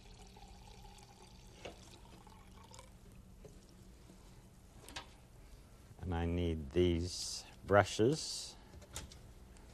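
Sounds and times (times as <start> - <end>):
water running into a jar in a kitchen for watercolor painting: 0.0 - 3.0
speech: 6.1 - 8.5.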